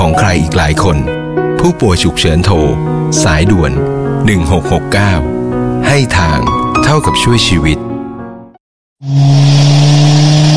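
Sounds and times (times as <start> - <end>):
speech: 0.3 - 7.8
car engine roaring while driven fast through traffic: 9.0 - 10.5.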